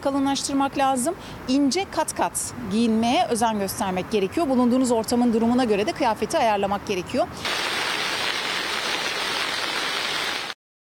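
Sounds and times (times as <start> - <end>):
speech: 0.0 - 7.8
heavy rain downpour: 7.4 - 10.6.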